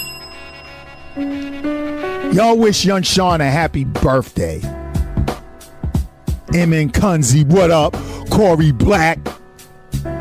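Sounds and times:
bright metallic bell ringing: 0.0 - 2.4
speech: 1.2 - 4.8, 6.5 - 9.3.

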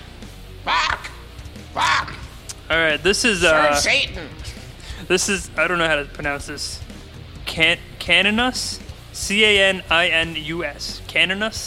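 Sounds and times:
low rumbling background: 0.0 - 11.6
harsh raspy bird squawks used as band vocals: 0.6 - 2.6
speech: 2.7 - 4.4, 5.1 - 6.8, 7.6 - 11.6.

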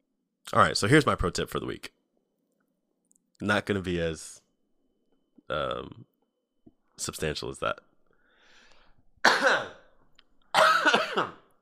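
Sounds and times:
speech: 0.5 - 2.0, 3.4 - 4.4, 5.5 - 6.1, 7.0 - 7.9, 11.2 - 11.4
harsh throaty coughs into a microphone: 9.2 - 9.9, 10.5 - 11.5.

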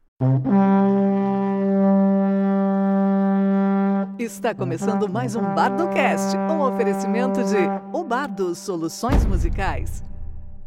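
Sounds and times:
podcast intro jingle of a sustained brassy horn-like chord: 0.2 - 9.4
speech: 4.2 - 10.1.

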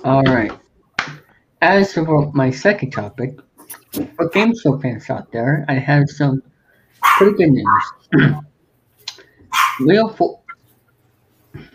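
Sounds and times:
speech: 0.0 - 0.6, 1.6 - 6.5, 7.2 - 8.5, 9.8 - 10.4
dog barking with loud yips: 7.0 - 8.0, 9.5 - 9.9.

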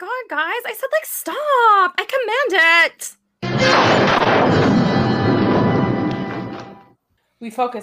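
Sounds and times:
speech: 0.0 - 4.8, 7.4 - 7.8
phaser weapon firing on a temple: 3.5 - 5.9.

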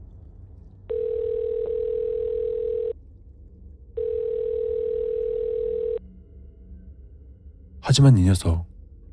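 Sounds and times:
faint low hum: 0.0 - 9.1
phone ringback tone: 0.9 - 3.0, 4.0 - 6.0
speech: 7.9 - 8.7.

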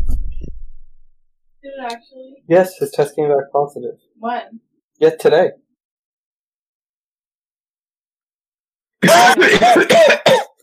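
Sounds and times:
speech: 1.8 - 5.6, 9.0 - 10.4
harsh coughs: 9.0 - 10.6.

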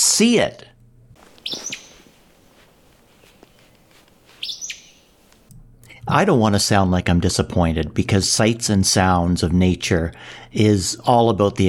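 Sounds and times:
speech: 0.0 - 0.7, 6.1 - 11.6
faint hiss: 1.0 - 6.2
Acadian flycatcher calls: 1.2 - 5.5.

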